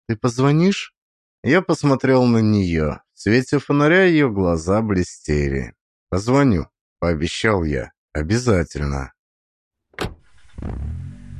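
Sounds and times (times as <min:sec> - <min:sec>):
speech: 0:00.1 - 0:09.2, 0:10.0 - 0:11.0
car door shutting: 0:10.0 - 0:11.3.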